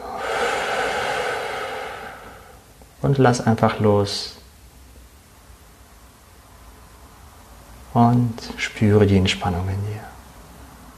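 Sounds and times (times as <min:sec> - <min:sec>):
deep exhale: 0:00.0 - 0:02.8
speech: 0:03.0 - 0:04.4, 0:08.0 - 0:10.1.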